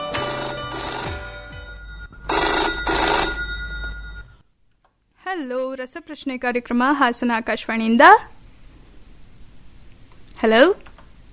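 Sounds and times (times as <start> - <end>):
telephone ringing for an incoming call to a radio phone-in quiz programme: 0.1 - 4.5
speech: 5.8 - 8.3, 10.4 - 10.8.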